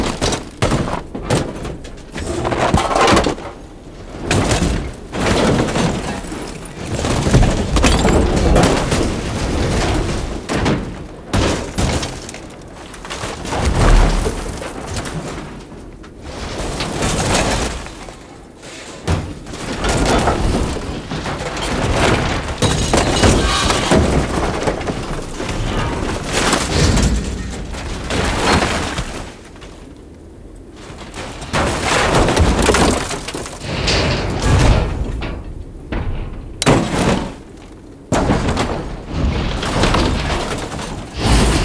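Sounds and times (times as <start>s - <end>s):
metal debris clattering and crashing: 0.0s - 18.2s, 19.1s - 29.9s, 31.1s - 41.6s
sharp impacts: 22.6s - 29.0s.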